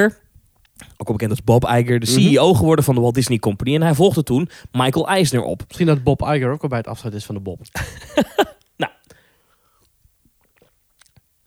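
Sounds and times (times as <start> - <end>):
speech: 0.0 - 0.2, 1.0 - 8.9
soft mouth clicks: 0.2 - 1.0, 7.6 - 11.4
swallowing: 0.2 - 1.1, 7.6 - 11.4
sharp slurp of water: 0.4 - 1.0, 9.0 - 11.4
laughter: 7.8 - 9.0.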